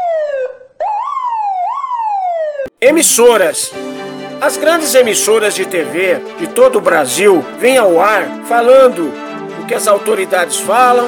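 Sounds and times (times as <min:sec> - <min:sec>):
siren sound effect wailing: 0:00.0 - 0:02.7
speech: 0:02.8 - 0:11.0.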